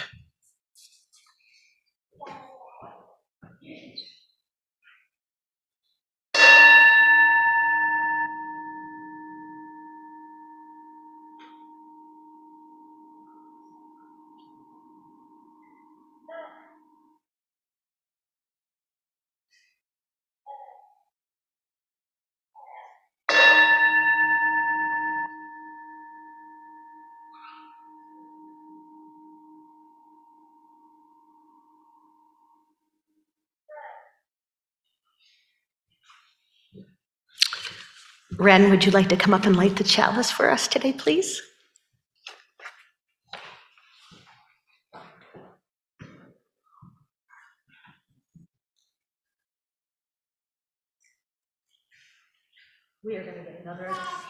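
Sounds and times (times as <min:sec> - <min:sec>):
large church bell struck to call worship: 0:06.4 - 0:16.3, 0:23.3 - 0:32.5
speech: 0:38.4 - 0:41.5.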